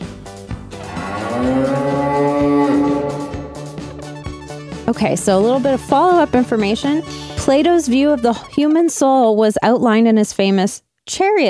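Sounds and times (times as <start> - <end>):
cow mooing sound effect: 0.8 - 4.0
speech: 4.9 - 11.4.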